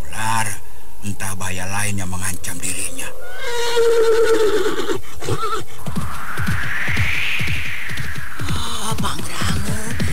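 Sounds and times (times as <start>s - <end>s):
speech: 1.0s - 6.0s
restless horse neighing: 3.1s - 5.7s
low rumbling thumps: 5.8s - 10.1s.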